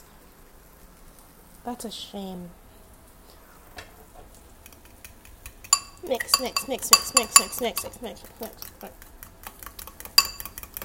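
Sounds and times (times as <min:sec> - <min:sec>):
speech: 0:01.6 - 0:02.6, 0:06.0 - 0:09.1
utensils clinking and scraping against a bowl mixing pancake batter: 0:04.7 - 0:10.8.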